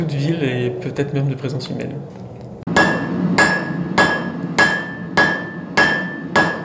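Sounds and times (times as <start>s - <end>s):
speech: 0.0s - 2.3s
low hum of a forge: 0.0s - 6.6s
ironworker's hammer striking anvil in a forge in a former stable: 2.7s - 6.6s.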